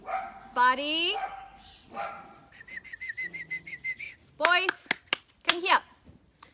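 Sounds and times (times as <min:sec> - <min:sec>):
dog barking sharply: 0:00.0 - 0:02.5
speech: 0:00.6 - 0:02.3, 0:04.4 - 0:05.9.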